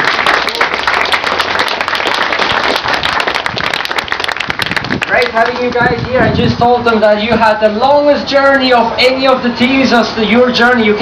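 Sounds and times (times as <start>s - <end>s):
crowd applause: 0.0s - 5.8s
speech: 5.2s - 11.0s.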